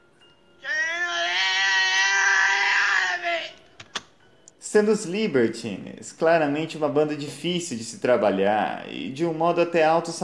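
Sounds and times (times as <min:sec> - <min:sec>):
man screaming a long strained scream at the start of a rock song: 0:00.6 - 0:03.6
speech: 0:04.7 - 0:10.2.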